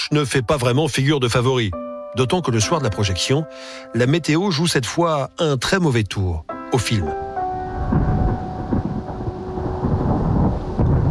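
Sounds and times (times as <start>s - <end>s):
speech: 0.1s - 7.2s
deep continuous rumble of thunder: 7.6s - 11.0s.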